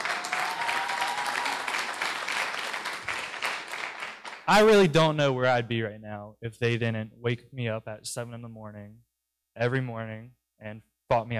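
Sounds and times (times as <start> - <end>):
audience applauding at a morning gathering: 0.0 - 5.1
speech: 4.5 - 11.3.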